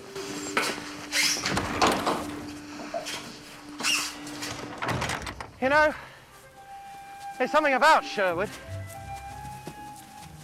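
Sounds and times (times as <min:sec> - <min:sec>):
door opening and closing: 0:00.5 - 0:05.8
door thuds and scraping knocks: 0:04.5 - 0:05.6
speech: 0:05.6 - 0:06.1, 0:07.4 - 0:08.6.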